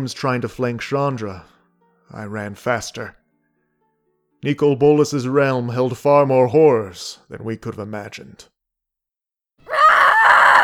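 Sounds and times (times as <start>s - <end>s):
speech: 0.0s - 1.5s, 2.1s - 3.2s, 4.4s - 8.5s
person letting out a loud battle yell: 9.7s - 10.6s.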